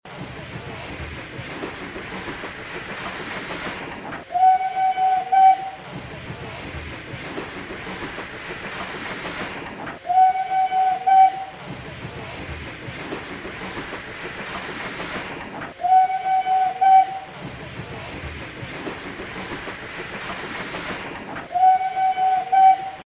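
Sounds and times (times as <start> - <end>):
train passing: 0.0 - 23.0
train horn: 4.3 - 5.8, 10.0 - 11.6, 15.8 - 17.3, 21.5 - 23.0.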